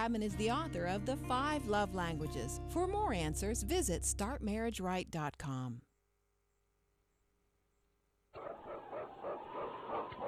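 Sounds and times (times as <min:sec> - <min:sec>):
speech: 0:00.0 - 0:05.9
sled dogs barking: 0:08.4 - 0:10.2.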